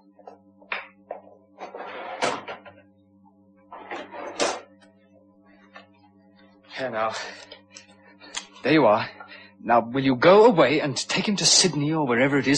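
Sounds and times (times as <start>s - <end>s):
steady low hum: 0.0s - 12.5s
cash drawer sliding open and shut: 1.6s - 2.7s, 3.8s - 4.7s
speech: 6.8s - 7.5s, 8.6s - 12.5s.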